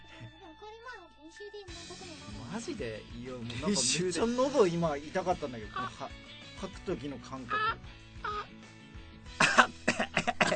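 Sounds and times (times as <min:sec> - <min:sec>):
speech: 0:01.4 - 0:08.4
person coughing after choking: 0:09.4 - 0:10.5.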